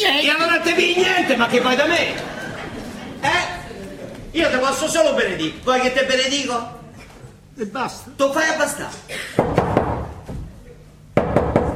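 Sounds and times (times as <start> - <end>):
laughter: 0.6 - 4.8
speech: 0.8 - 2.4, 4.4 - 6.8, 7.6 - 9.7
knocking on a door: 9.4 - 10.5, 11.2 - 11.7.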